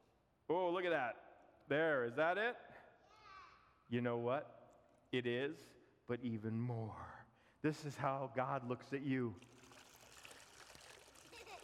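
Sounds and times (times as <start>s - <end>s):
speech: 0.5s - 2.7s, 3.9s - 9.8s
water pouring into a container and splashing over its edge: 9.4s - 11.6s.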